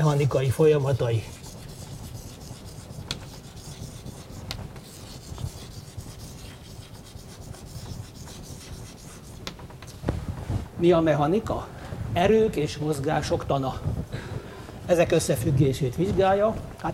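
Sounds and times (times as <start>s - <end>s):
speech: 0.0s - 1.4s, 10.8s - 14.0s, 14.9s - 16.9s
writing on a board during a mechanics lecture: 0.0s - 10.0s.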